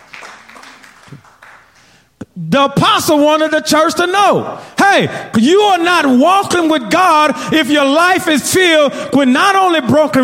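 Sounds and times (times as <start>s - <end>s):
audience hand clapping: 0.0s - 2.1s
speech: 2.4s - 10.2s.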